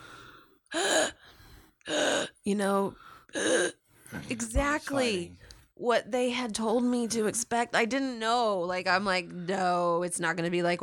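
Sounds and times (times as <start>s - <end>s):
person imitating a woman's labored gasp: 0.7s - 1.3s
speech: 2.5s - 10.8s.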